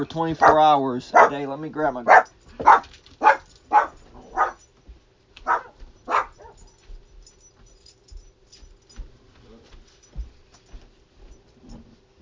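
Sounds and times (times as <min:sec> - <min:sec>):
speech: 0:00.0 - 0:02.7
hum: 0:00.0 - 0:12.2
dog barking: 0:00.3 - 0:04.7, 0:05.4 - 0:06.8.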